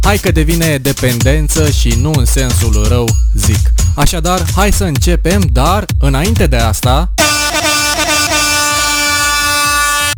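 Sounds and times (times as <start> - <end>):
speech: 0.1 - 7.3
air horn blasting: 7.2 - 10.1.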